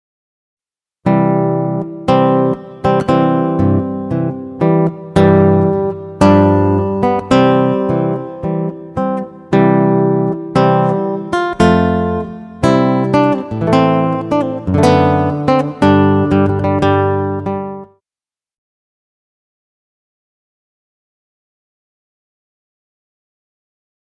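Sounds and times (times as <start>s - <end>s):
solo guitar playing a wedding march: 1.0s - 18.0s.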